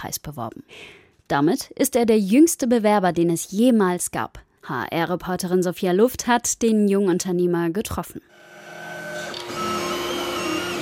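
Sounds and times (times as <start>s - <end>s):
speech: 0.0s - 8.5s
3D printer motors whirring and humming: 8.4s - 10.7s.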